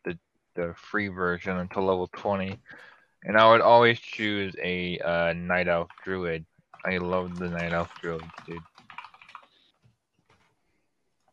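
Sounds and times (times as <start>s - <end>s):
speech: 0.1s - 8.7s
computer keyboard typing: 6.8s - 9.8s.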